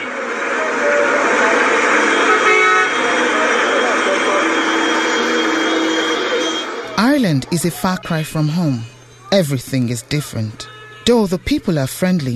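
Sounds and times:
dense noisy city street traffic: 0.0s - 12.3s
indistinct voices: 0.0s - 12.3s
car horns honking in city traffic: 1.0s - 12.3s
speech: 7.2s - 12.3s.

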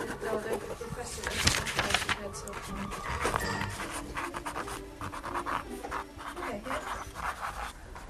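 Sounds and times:
paperclip scribbling on paper: 0.0s - 8.0s.

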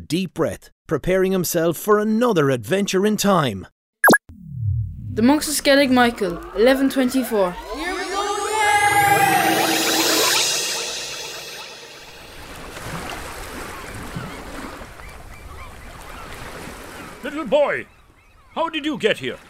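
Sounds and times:
speech: 0.1s - 3.8s, 5.2s - 8.0s, 17.5s - 18.0s, 18.6s - 19.4s
swooping sliding tones: 4.9s - 12.7s
ocean waves splashing around a boat from the Kerry mainland to Skellig Michael: 12.6s - 18.2s.

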